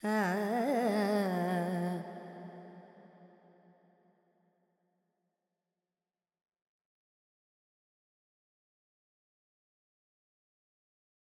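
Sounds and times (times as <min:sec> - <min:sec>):
female Carnatic vocal alaps in Lydian mode: 0:00.0 - 0:02.8.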